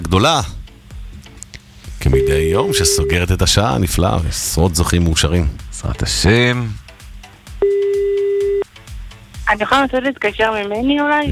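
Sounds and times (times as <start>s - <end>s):
soft rhythmic background: 0.0s - 11.3s
speech: 0.1s - 0.6s, 2.1s - 6.8s, 9.5s - 11.3s
telephone ringback tone, call not answered: 2.2s - 3.3s, 7.6s - 8.6s.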